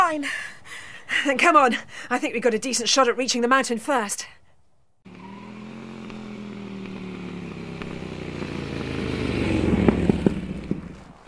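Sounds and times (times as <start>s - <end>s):
speech: 0.1s - 0.4s, 1.2s - 4.4s
motorcycle engine rumbling: 5.1s - 11.2s.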